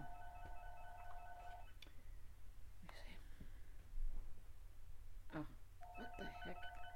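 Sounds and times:
electronic phone ringing in trilling bursts: 0.0 - 1.8, 5.8 - 6.9
low hum: 0.0 - 6.9
soft whispery voices: 2.8 - 3.5.

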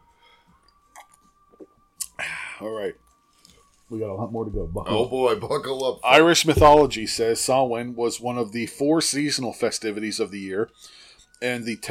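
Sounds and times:
person sipping a drink: 0.6 - 2.2
speech: 2.6 - 3.1, 3.9 - 11.8
low steady hum: 4.2 - 8.5.

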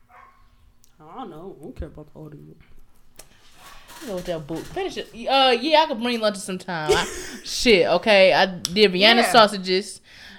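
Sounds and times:
dog barking: 0.0 - 0.5, 9.0 - 9.5
speech: 1.2 - 2.8, 4.0 - 10.3.

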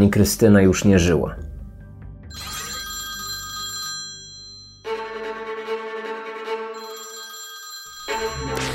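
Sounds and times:
speech: 0.0 - 1.5
telephone ringing: 2.3 - 4.9, 6.8 - 8.7.

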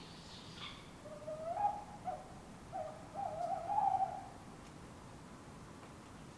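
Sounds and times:
tawny owl hooting in an urban setting in Surrey, England: 0.0 - 4.4
steady background hiss: 0.0 - 6.3.

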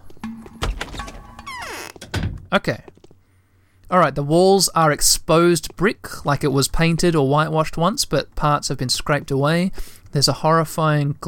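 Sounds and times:
front door of a building opening and closing: 0.0 - 3.1
speech: 2.5 - 2.9, 3.9 - 11.2.

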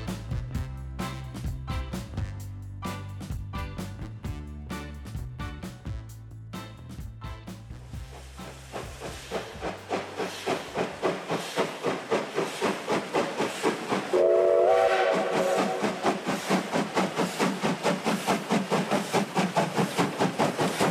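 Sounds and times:
old steam locomotive chugging: 0.0 - 4.2, 7.5 - 20.8
old steam locomotive whistle: 14.1 - 16.4.

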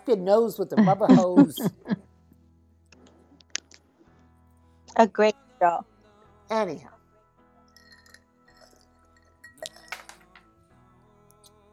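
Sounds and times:
speech: 0.0 - 2.0, 5.0 - 5.9, 6.5 - 7.0
laughter: 0.8 - 2.0
ice clinking against a glass: 7.8 - 10.5.

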